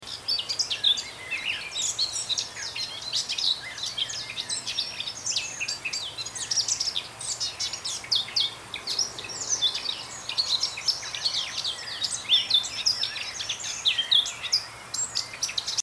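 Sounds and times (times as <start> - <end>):
Eurasian blackcap singing: 0.0 - 15.8.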